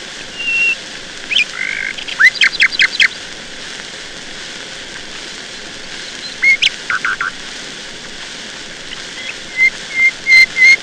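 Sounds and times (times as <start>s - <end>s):
nightingale song: 0.3s - 3.2s, 5.6s - 7.4s, 8.8s - 10.8s.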